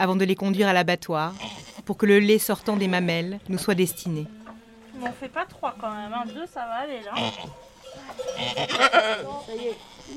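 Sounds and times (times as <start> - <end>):
speech: 0.0 - 4.4, 5.0 - 10.1
goat bleating after kids are removed: 1.2 - 3.0, 4.2 - 5.0, 7.0 - 10.1.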